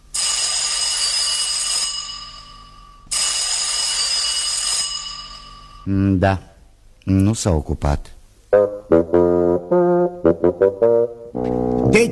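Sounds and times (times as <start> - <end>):
telephone ringing in long loud bursts: 0.2 - 5.8
speech: 5.8 - 6.5, 7.1 - 12.1.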